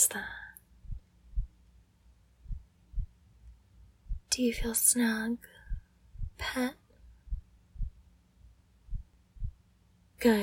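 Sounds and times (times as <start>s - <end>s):
speech: 0.0s - 0.4s, 4.4s - 5.6s, 6.4s - 6.8s, 10.2s - 10.4s
quiet hum: 0.0s - 10.4s
slow heartbeat thuds: 0.8s - 1.6s, 2.4s - 3.2s, 4.0s - 4.3s, 5.7s - 6.5s, 7.2s - 8.0s, 8.9s - 9.6s.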